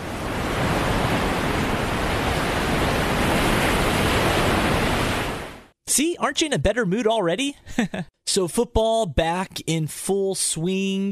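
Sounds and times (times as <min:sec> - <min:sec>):
surf crashing continuously on the beach: 0:00.0 - 0:05.7
speech: 0:06.2 - 0:11.1.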